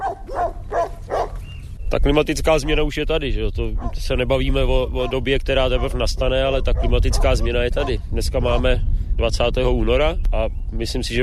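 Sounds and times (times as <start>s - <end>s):
dogs barking on a farm near Zruc nad Sazavou, Czech Republic: 0.0s - 1.7s, 3.6s - 8.8s
low rumbling hum outdoors: 0.0s - 11.2s
speech: 2.0s - 11.2s.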